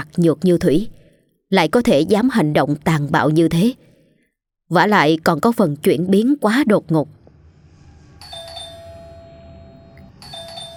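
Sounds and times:
speech: 0.1s - 3.8s, 4.7s - 7.2s
electronic doorbell ringing: 8.2s - 10.7s.

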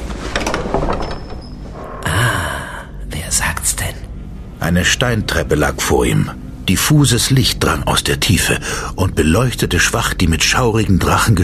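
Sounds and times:
cellar door opening with scraping and rustling: 0.0s - 2.2s
speech: 4.6s - 11.4s.

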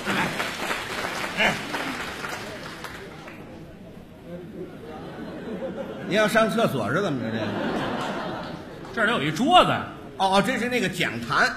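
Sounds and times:
audience applause at a comedy show: 0.0s - 3.6s
laughter: 4.4s - 6.5s, 7.1s - 8.9s
speech: 6.1s - 7.8s, 9.0s - 11.5s.

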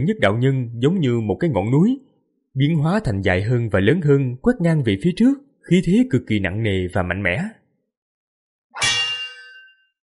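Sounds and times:
speech: 0.0s - 7.6s
saber blade metallic clang ringing: 8.8s - 10.0s.

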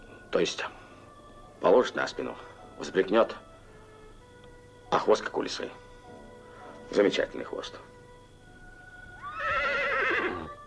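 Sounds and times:
speech: 0.3s - 0.8s, 1.6s - 3.4s, 4.9s - 5.8s, 6.9s - 7.9s
horse neighing: 9.2s - 10.6s.

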